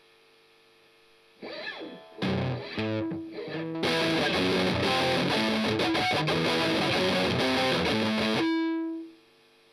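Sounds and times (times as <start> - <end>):
strummed octave: 1.4 - 9.2.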